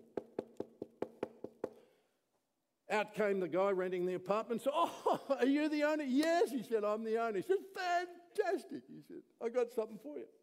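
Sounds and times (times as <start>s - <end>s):
knocking on a wooden door: 0.0s - 1.8s
speech: 2.9s - 10.4s.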